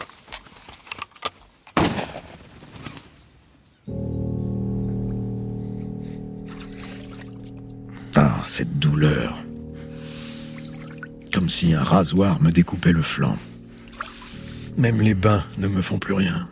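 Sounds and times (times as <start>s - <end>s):
gunshot fired at a partridge during an outdoor hunt: 1.8s - 2.4s
steady droning tone: 3.9s - 15.8s
speech: 8.2s - 9.4s, 11.5s - 13.5s, 14.8s - 16.5s.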